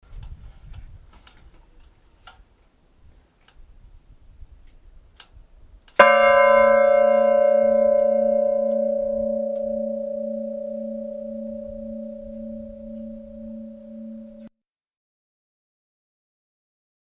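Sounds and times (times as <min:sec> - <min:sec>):
bell ringing in Olmet: 0:06.0 - 0:14.5.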